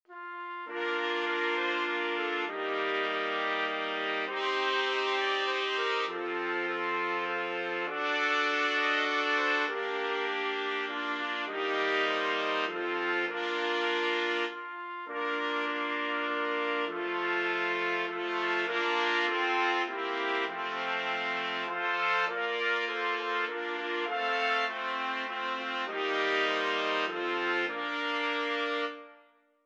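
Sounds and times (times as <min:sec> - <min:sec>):
trumpet quartet playing a Christmas song: 0:00.1 - 0:29.2.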